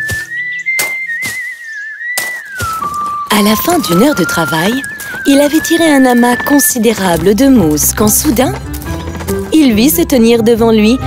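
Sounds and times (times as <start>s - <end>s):
person whistling a tune while working: 0.0s - 7.0s
speech: 3.4s - 8.8s, 9.5s - 11.0s.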